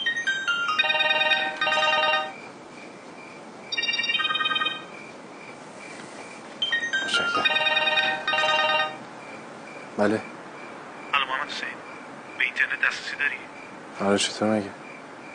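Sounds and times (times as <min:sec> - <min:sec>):
phone ringtone playing bright electronic melody: 0:00.0 - 0:02.5, 0:03.7 - 0:05.0, 0:06.6 - 0:09.1
speech: 0:10.0 - 0:10.3, 0:12.9 - 0:14.8.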